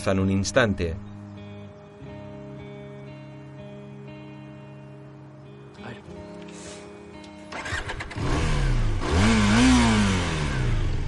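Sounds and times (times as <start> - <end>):
speech: 0.0 - 1.1
car engine starting and revving as a learner driver pulls away in first gear: 7.5 - 11.0.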